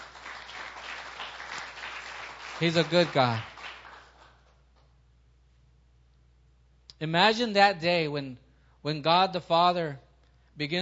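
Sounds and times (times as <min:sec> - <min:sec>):
audience applauding as a clap offering: 0:00.0 - 0:04.5
speech: 0:02.6 - 0:03.5, 0:07.0 - 0:10.0, 0:10.6 - 0:10.8.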